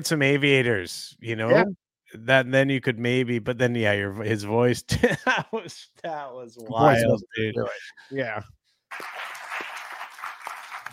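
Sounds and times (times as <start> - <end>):
speech: 0.0 - 9.3
laughter: 4.8 - 7.9
audience clapping: 8.9 - 10.9.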